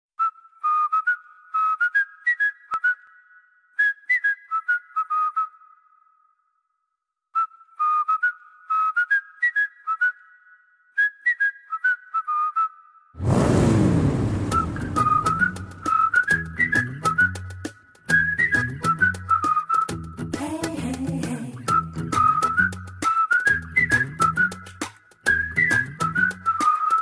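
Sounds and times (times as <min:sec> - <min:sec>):
whistle tone: 0:00.2 - 0:06.6, 0:07.3 - 0:26.9.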